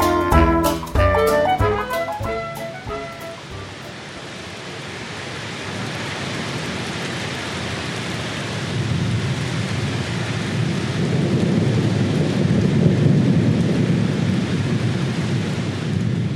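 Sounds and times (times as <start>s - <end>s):
heavy rain: 0.0s - 16.3s
deep rolling thunder: 8.6s - 16.3s.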